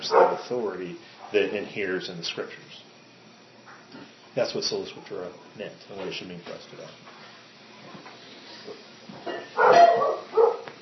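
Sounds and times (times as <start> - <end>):
dog guarding the perimeter barking: 0.0 - 0.4, 9.6 - 10.7
speech: 0.4 - 2.9, 3.9 - 7.1.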